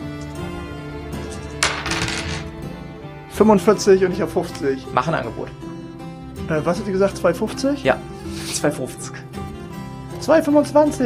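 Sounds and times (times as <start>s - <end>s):
soft music: 0.0s - 11.0s
dice clattering onto a hard surface: 1.6s - 2.5s
speech: 3.4s - 5.7s, 6.5s - 9.2s, 10.3s - 11.0s.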